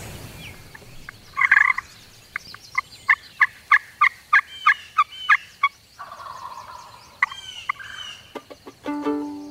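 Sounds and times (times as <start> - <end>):
softer bird calls and chirps: 0.2 - 9.4
wild turkey gobbling: 0.7 - 8.8.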